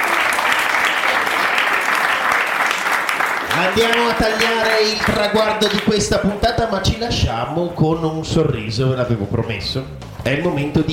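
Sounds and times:
applause of many hands clapping: 0.0 - 6.1
speech: 3.6 - 10.9.

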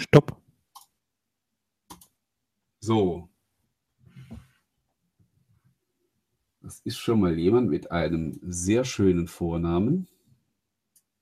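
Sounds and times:
speech: 0.1 - 0.4, 2.8 - 3.3, 6.7 - 10.1
computer mouse clicks selecting a name: 0.7 - 1.0, 1.9 - 2.2, 10.9 - 11.1.

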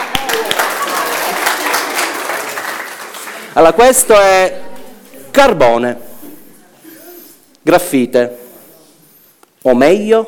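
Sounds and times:
audience applause: 0.0 - 3.6
speech: 3.6 - 4.7, 5.4 - 6.1, 7.7 - 8.4, 9.6 - 10.2.

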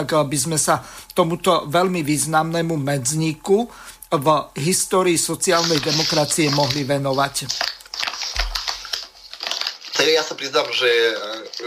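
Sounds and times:
speech: 0.0 - 7.8, 10.0 - 11.6
paper rustling and crinkling near a sensitive microphone: 5.4 - 11.6
sharp broadband crackles: 5.4 - 11.6.

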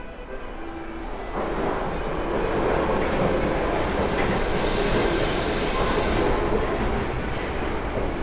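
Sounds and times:
U-Bahn subway train roaring out of a tunnel into a station: 0.0 - 8.2
subway train wheels squealing on rails: 1.0 - 7.3.

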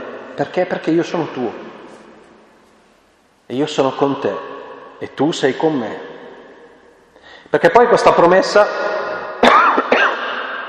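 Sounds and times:
steady low hiss: 0.0 - 10.0
speech: 0.4 - 1.7, 3.5 - 6.1, 7.5 - 9.0
person coughing throatily: 9.4 - 10.4.

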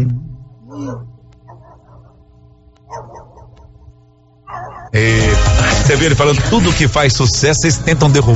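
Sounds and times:
steady low hum: 0.0 - 8.3
dog barking: 1.5 - 2.2, 2.9 - 5.0
speech: 4.9 - 8.3.

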